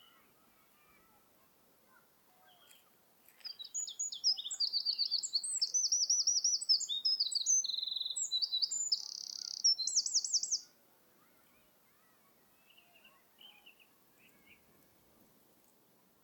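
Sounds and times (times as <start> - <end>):
Eurasian wren singing: 3.5 - 10.7.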